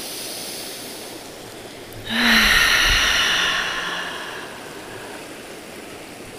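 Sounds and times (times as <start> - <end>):
deep breath during a guided breathing exercise: 1.5 - 5.6.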